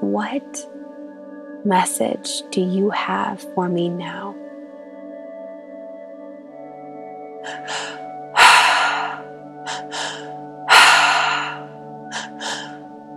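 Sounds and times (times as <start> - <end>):
steady sustained musical drone: 0.0 - 13.1
speech: 0.1 - 0.8, 1.6 - 4.4
deep breathing during a breathwork exercise: 7.4 - 13.1.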